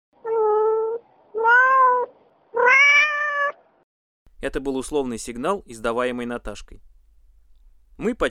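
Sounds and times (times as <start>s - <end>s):
cat meowing mournfully: 0.2s - 3.6s
speech: 4.4s - 6.9s, 8.0s - 8.3s.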